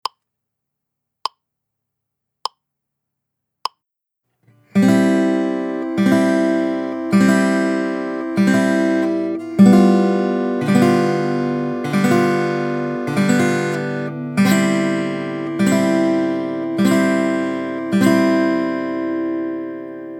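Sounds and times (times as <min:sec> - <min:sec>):
thumb strum: 0:04.7 - 0:20.1.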